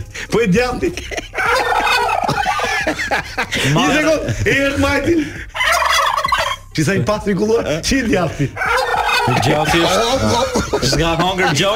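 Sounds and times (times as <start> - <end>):
speech: 0.3 - 1.8, 2.8 - 5.5, 6.8 - 8.6, 9.2 - 11.7
laughter: 0.6 - 6.0, 8.1 - 11.7
turkey gobbling: 1.4 - 2.6, 5.5 - 6.7, 8.6 - 10.0.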